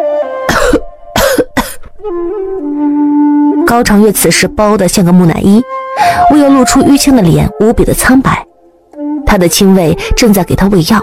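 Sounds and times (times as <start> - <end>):
harsh forceful coughing: 0.5 - 1.9
steady soft tonal background: 0.7 - 11.0
speech: 3.7 - 8.5, 9.3 - 11.0.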